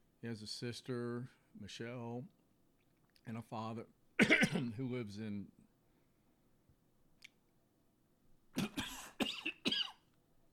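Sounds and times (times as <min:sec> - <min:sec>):
speech: 0:00.2 - 0:02.4, 0:03.2 - 0:05.6
person coughing: 0:04.2 - 0:04.8, 0:08.6 - 0:10.1.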